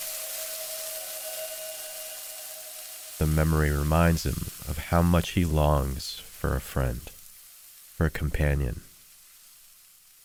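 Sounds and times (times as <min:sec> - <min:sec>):
meat sizzling in a hot pan: 0:00.0 - 0:10.2
faint underlying hum: 0:00.1 - 0:07.2
speech: 0:03.2 - 0:07.2, 0:08.0 - 0:08.9.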